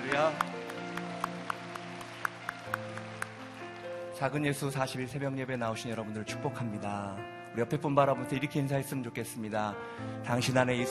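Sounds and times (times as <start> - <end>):
audience clapping: 0.0 - 4.8
speech: 0.2 - 0.5, 4.2 - 10.9.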